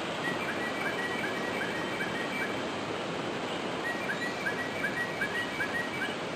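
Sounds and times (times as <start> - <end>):
greater racket-tailed drongo calling: 0.2 - 2.7, 3.8 - 6.2.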